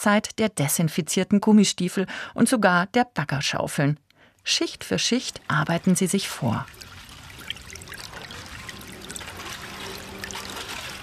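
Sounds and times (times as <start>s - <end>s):
speech: 0.0s - 6.9s
water trickling through gaps in sheet piling: 4.2s - 11.0s.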